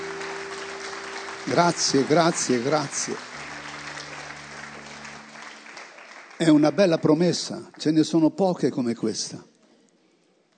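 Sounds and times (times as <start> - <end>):
church congregation applauding during worship: 0.0 - 8.2
speech: 1.5 - 3.3, 6.4 - 9.5.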